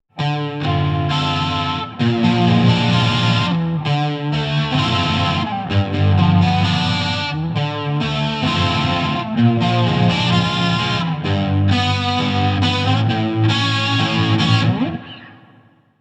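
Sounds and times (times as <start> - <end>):
guitar amplifier with chorus effect: 0.1 - 15.9.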